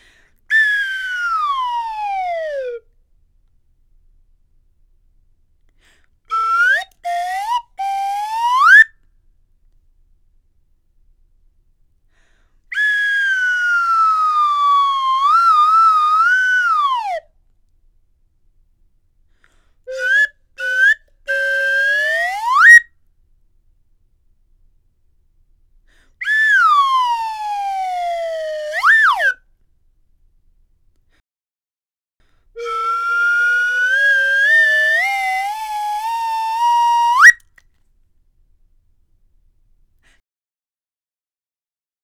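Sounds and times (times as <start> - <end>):
slide whistle glissandos: 0.5 - 2.9, 6.3 - 9.1, 12.7 - 17.3, 19.4 - 22.9, 25.9 - 29.4, 32.6 - 37.6.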